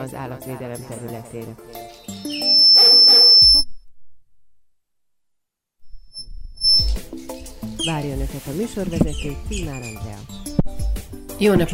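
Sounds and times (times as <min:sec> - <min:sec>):
speech: 0:00.0 - 0:03.7, 0:07.9 - 0:10.4, 0:11.4 - 0:11.7
dog squeaking a squeaky toy: 0:02.3 - 0:03.6.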